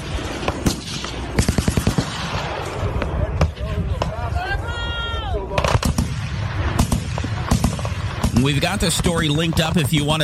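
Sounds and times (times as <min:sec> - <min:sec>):
military gunfire by Iranian forces firing at a boomerang-shaped craft: 0:00.0 - 0:04.2, 0:05.6 - 0:10.2
people shouting: 0:03.2 - 0:05.6
speech: 0:08.4 - 0:10.2.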